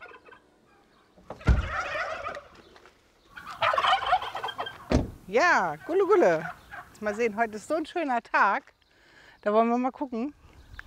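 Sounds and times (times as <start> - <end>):
turkeys gobbling in loud rattling bursts: 0.0 - 7.6
sharp thump: 4.9 - 5.2
speech: 5.3 - 8.8, 9.4 - 10.4.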